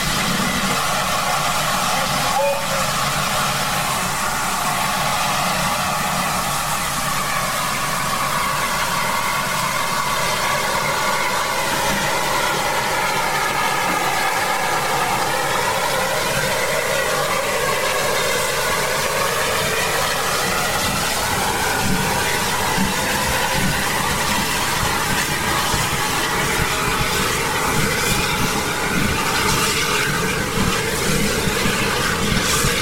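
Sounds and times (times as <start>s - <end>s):
steam locomotive pulling out of a railway station: 0.0s - 32.8s.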